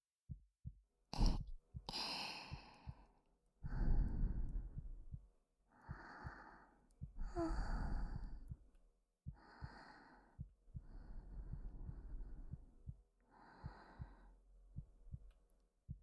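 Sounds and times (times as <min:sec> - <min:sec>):
heartbeat thumping: 0:00.3 - 0:05.3, 0:05.9 - 0:16.0
soft breathing: 0:01.2 - 0:08.6, 0:09.3 - 0:14.4.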